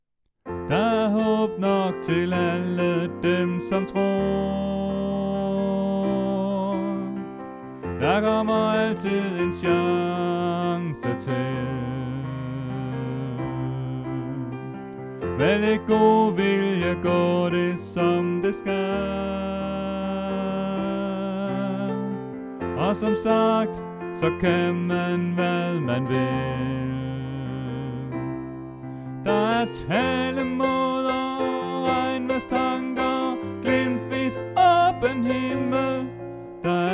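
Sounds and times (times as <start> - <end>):
soprano singing: 0.6 - 36.9.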